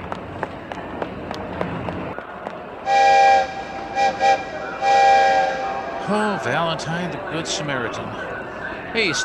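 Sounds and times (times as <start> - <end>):
train rumbling and clattering as it pulls out of station: 0.0 - 9.2
train whistle blasts and toots: 2.9 - 6.0
speech: 6.1 - 9.2.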